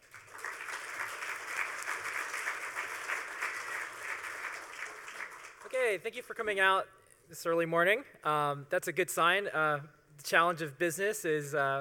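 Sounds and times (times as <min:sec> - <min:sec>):
crowd applauding: 0:00.0 - 0:05.8
speech: 0:05.8 - 0:11.7.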